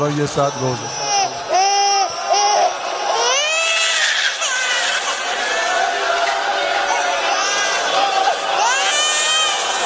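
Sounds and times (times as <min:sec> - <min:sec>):
speech: 0:00.0 - 0:01.0
murmuring crowd and other voices: 0:00.0 - 0:09.8
baby crying: 0:01.0 - 0:06.0, 0:06.9 - 0:09.8.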